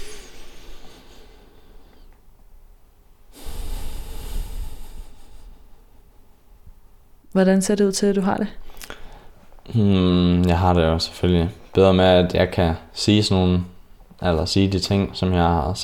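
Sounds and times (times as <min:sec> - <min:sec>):
slow deep breath in and out: 0:00.0 - 0:02.2, 0:03.3 - 0:06.2
speech: 0:07.4 - 0:08.7, 0:09.7 - 0:15.8.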